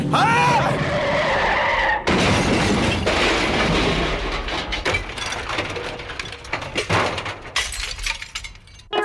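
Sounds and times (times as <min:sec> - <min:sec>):
tires screeching as an old car skids with broken steering: 0:00.0 - 0:02.1
rattling crashing bursts: 0:02.1 - 0:08.9.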